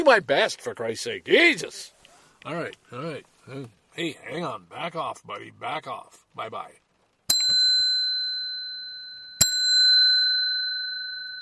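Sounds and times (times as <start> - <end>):
speech: 0.0 - 6.8
bell ringing: 7.3 - 11.3.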